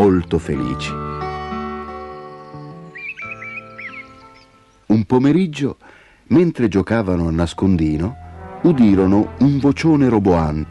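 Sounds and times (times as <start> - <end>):
speech: 0.0 - 1.2, 5.0 - 10.7
steady gentle musical backdrop: 0.0 - 10.7
birds chirping softly in trees: 0.2 - 6.2.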